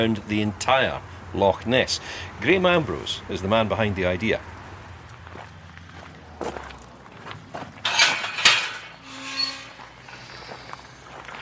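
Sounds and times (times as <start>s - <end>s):
speech: 0.0s - 4.6s
steady outdoor hiss: 0.0s - 9.1s, 9.7s - 11.4s
footsteps crunching on the South Loch Ness Trail: 5.0s - 7.8s, 10.2s - 11.4s.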